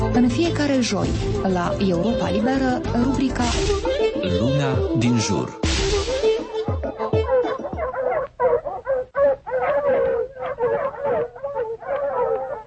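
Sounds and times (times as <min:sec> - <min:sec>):
speech: 0:00.2 - 0:05.7
stray dogs barking and howling: 0:06.3 - 0:12.6.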